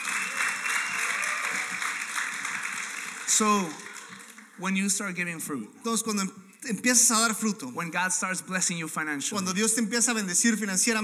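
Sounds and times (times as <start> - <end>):
audience applause: 0.0 - 4.7
speech: 3.4 - 3.8, 4.6 - 11.0.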